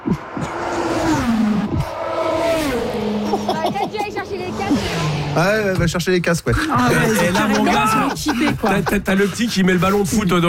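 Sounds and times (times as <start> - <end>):
car passing at 300 km/h: 0.0 - 5.8
laughter: 3.2 - 4.2, 6.5 - 10.4
speech: 5.4 - 10.4.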